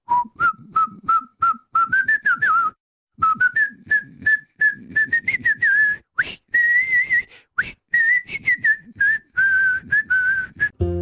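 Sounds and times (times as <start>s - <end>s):
person whistling a short repetitive tune: 0.0s - 10.9s.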